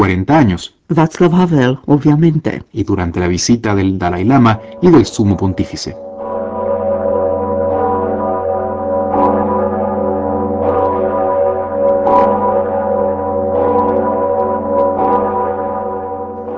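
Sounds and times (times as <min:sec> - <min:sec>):
speech: 0:00.0 - 0:06.1
huge deep cathedral bell tolling: 0:04.1 - 0:16.5.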